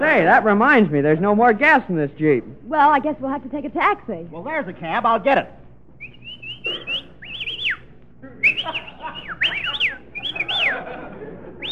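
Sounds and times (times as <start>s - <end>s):
speech: 0.0s - 6.2s, 8.2s - 9.2s
faint low hum: 0.0s - 11.7s
person whistling: 6.0s - 10.8s
laughter: 8.2s - 11.7s.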